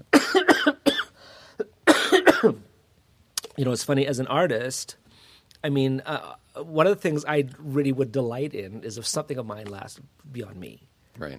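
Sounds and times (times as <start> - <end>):
harsh coughs: 0.1 - 2.6
speech: 3.6 - 5.0, 5.6 - 11.3.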